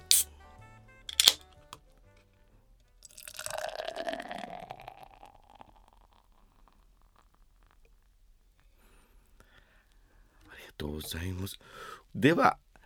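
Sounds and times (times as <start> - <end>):
sharp clicks: 1.1 - 1.4
beer being poured into a glass: 3.1 - 7.9
speech: 10.8 - 12.6.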